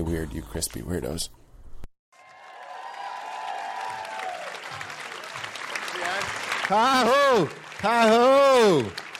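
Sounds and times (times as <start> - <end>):
speech: 0.0 - 1.4, 6.7 - 9.1
live audience at a live show clapping and cheering: 2.1 - 9.1.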